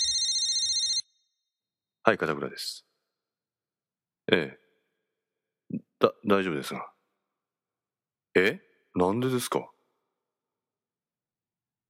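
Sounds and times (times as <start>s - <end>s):
mobile phone ringing with a bright steady electronic tone: 0.0s - 1.1s
speech: 2.1s - 2.9s, 4.3s - 4.6s, 5.7s - 6.9s, 8.4s - 9.7s.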